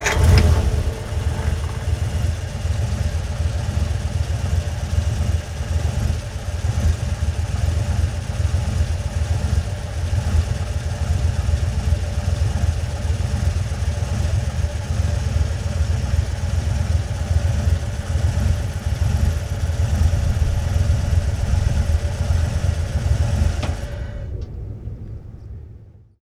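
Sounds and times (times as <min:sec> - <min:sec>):
1947 Ford V8 truck engine revving: 0:00.0 - 0:04.4, 0:13.2 - 0:26.0
1947 Ford V8 truck engine starting: 0:00.0 - 0:26.2.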